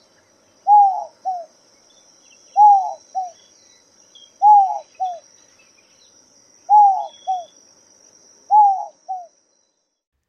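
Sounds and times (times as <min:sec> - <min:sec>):
Inca dove cooing: 0:00.6 - 0:01.5, 0:02.6 - 0:03.4, 0:04.4 - 0:05.2, 0:06.7 - 0:07.5, 0:08.5 - 0:09.3.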